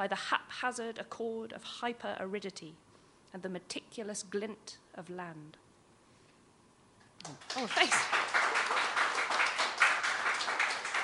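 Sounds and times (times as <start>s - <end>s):
speech: 0.0s - 5.6s, 7.2s - 8.2s
audience applause at a poetry reading event: 7.2s - 11.0s.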